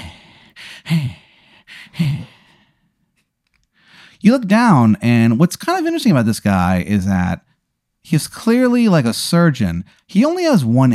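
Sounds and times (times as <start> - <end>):
voice imitating heavy breathing: 0.0 - 2.8
speech: 0.9 - 1.2, 4.2 - 7.5, 8.1 - 10.9.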